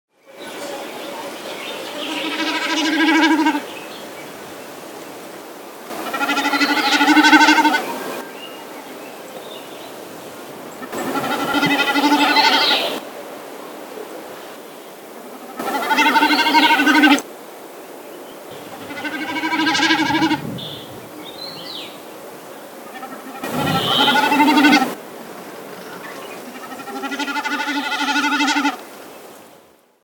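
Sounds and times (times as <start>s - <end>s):
snipe calling: 2.0s - 3.7s, 6.0s - 8.0s, 10.8s - 13.0s, 15.5s - 17.2s, 18.5s - 21.7s, 22.9s - 25.0s, 25.8s - 28.8s.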